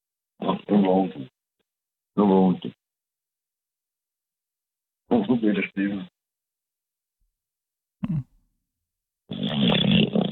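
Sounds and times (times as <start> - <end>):
speech: 0.7 - 1.3, 2.2 - 2.8, 5.1 - 6.1
loud rasping throaty snore: 9.3 - 10.3.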